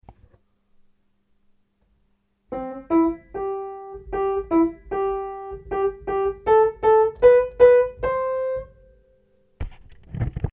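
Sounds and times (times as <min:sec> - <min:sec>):
rhythm: 0:02.5 - 0:09.0.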